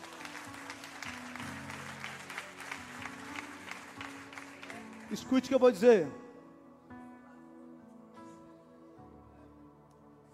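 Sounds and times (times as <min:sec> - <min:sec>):
crowd applauding in a large room: 0:00.0 - 0:06.1
speech: 0:05.1 - 0:06.2.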